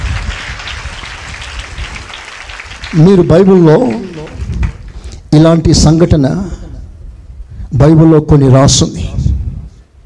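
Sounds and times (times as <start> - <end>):
audience at a sermon clapping hands in applause: 0.0 - 5.2
speech: 2.9 - 4.2, 5.4 - 6.6, 7.7 - 9.2.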